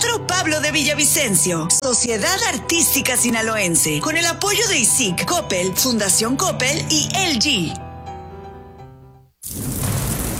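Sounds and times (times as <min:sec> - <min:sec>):
sustained musical tones: 0:00.0 - 0:09.3
speech: 0:00.4 - 0:07.8
loud dense rainfall: 0:09.4 - 0:10.3
deep thunder-like rumble: 0:09.5 - 0:10.3.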